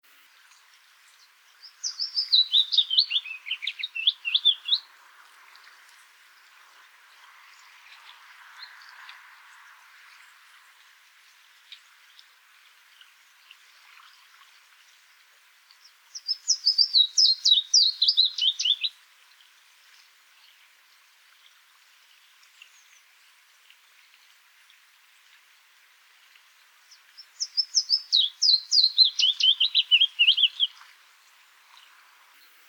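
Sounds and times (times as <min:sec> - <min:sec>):
willow warbler in Oberammergau: 0:00.1 - 0:10.8, 0:13.8 - 0:19.0, 0:26.8 - 0:32.6.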